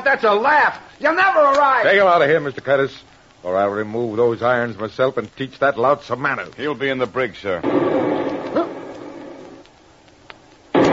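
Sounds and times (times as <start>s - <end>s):
speech: 0.1s - 8.7s
torpedo explosion hitting a ship: 7.6s - 9.6s, 10.7s - 10.9s.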